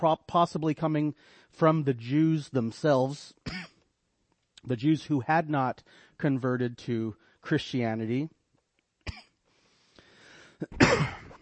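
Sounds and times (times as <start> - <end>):
speech: 0.0 - 3.7, 4.6 - 8.4, 10.6 - 11.2
person coughing: 3.4 - 3.8, 9.1 - 9.4, 10.6 - 11.4.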